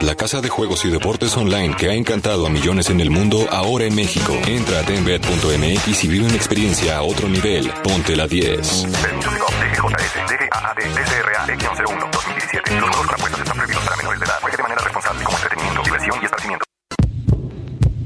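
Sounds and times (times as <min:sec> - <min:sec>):
speech: 0:00.0 - 0:15.3
dense busy musical bed: 0:00.0 - 0:18.0
deep steady heartbeat sound effect: 0:17.0 - 0:18.0.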